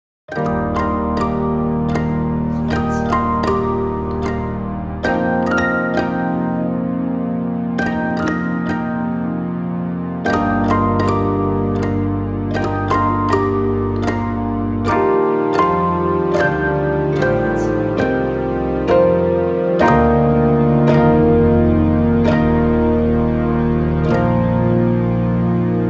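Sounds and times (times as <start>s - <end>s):
piano pizzicato: 0.3s - 25.8s.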